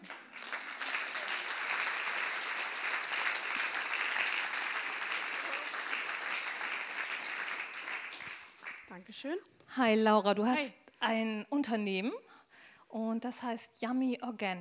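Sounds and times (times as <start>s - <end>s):
audience applause at a talk evening at Universum Bremen: 0.0s - 8.9s
speech: 9.0s - 12.2s, 12.9s - 14.5s.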